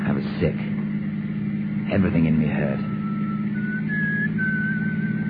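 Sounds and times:
speech: 0:00.1 - 0:00.7, 0:01.9 - 0:02.9
man whistling a simple tune: 0:02.8 - 0:05.2.

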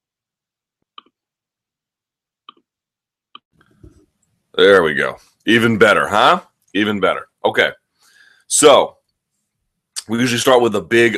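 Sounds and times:
microphone being adjusted, clicks and knocks: 0:03.6 - 0:04.1
speech: 0:04.6 - 0:07.8, 0:08.5 - 0:09.0, 0:10.1 - 0:11.1.

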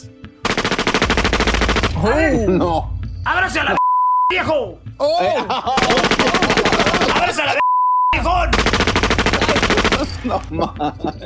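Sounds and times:
loud rapid burst of gunshots in Sinaloa: 0:00.4 - 0:02.1, 0:05.8 - 0:07.5, 0:08.4 - 0:10.4
speech: 0:02.0 - 0:07.6, 0:10.2 - 0:11.2
laughter: 0:05.0 - 0:07.6, 0:09.3 - 0:11.2.

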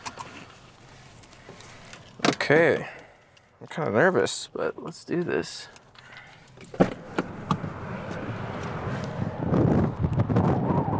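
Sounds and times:
speech: 0:02.5 - 0:03.0, 0:03.6 - 0:05.8
strong wind buffeting the microphone: 0:06.9 - 0:10.9.

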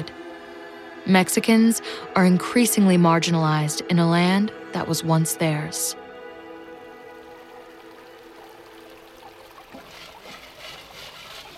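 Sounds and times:
speech: 0:01.1 - 0:06.0
creek water running at Sawmill Flat California: 0:06.2 - 0:11.5
pan submerged in running creek water: 0:07.1 - 0:11.5.

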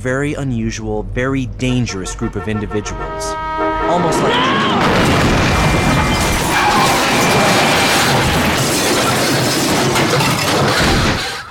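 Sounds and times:
speech: 0:00.0 - 0:06.4
SUV smashing into the driver's side of a car: 0:04.8 - 0:11.4
grinding metal and debris as the SUV pushes the car: 0:04.8 - 0:11.4.

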